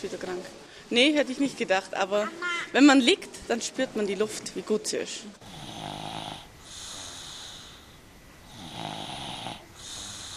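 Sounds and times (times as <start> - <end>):
speech: 0.0 - 5.6
small children snoring peacefully with soft wheezy breaths: 5.4 - 10.3.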